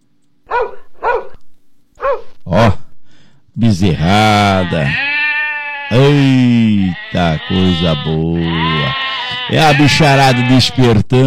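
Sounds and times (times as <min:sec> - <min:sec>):
farm herding dog barking: 0:00.5 - 0:01.4, 0:02.0 - 0:02.4
speech: 0:03.6 - 0:05.1, 0:05.9 - 0:11.2.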